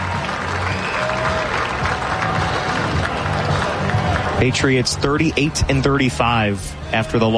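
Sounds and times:
large crowd applauding and cheering at a baseball game in an open stadium: 0.0 - 7.3
whistling from a baseball stadium crowd: 0.6 - 1.1
speech: 4.4 - 7.3.

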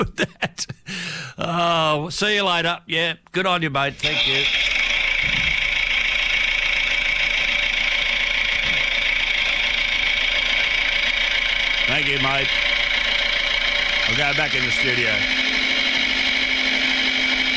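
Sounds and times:
speech: 0.0 - 0.7, 1.4 - 4.7, 11.9 - 12.6, 14.1 - 15.4
laughter: 0.0 - 0.9
small engine of a little red tractor idling and driving off: 4.0 - 17.5.

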